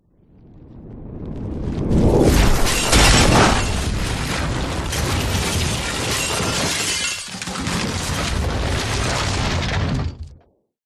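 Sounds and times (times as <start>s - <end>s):
massive junk debris impacts: 2.2s - 10.5s.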